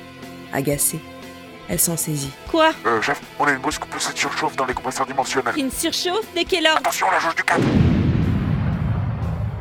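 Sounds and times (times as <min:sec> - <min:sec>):
speech: 0:00.5 - 0:07.9
muffled distant explosion echoing through corridors: 0:07.6 - 0:09.5.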